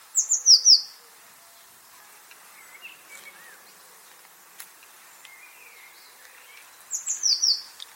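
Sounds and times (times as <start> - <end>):
Eurasian blue tit calls: 0.2 - 1.6, 2.5 - 4.2, 4.8 - 7.9.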